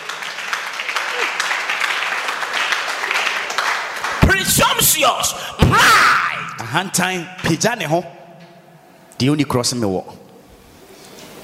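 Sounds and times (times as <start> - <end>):
crowd clapping: 0.0 - 5.4
speech: 4.5 - 8.2, 9.2 - 10.2.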